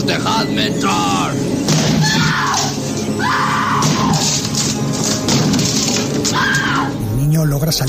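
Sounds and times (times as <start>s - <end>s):
speech: 0.1s - 1.4s, 7.3s - 7.8s
woman screaming in terror: 2.0s - 4.2s, 6.3s - 7.0s
door being smashed down with heavy splintering blows: 3.8s - 6.6s.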